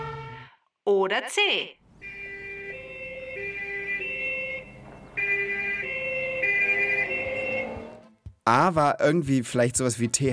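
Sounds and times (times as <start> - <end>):
police car siren in two-tone pattern: 0.0 - 0.5, 2.0 - 8.2
speech: 0.9 - 1.8, 8.5 - 10.3.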